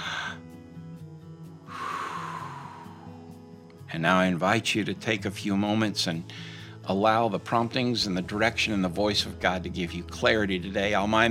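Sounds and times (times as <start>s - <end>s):
person inhaling deeply during a guided prayer: 0.0s - 0.6s, 1.7s - 3.4s, 6.3s - 6.8s
low steady sustained tone: 1.7s - 3.7s
speech: 3.9s - 11.2s.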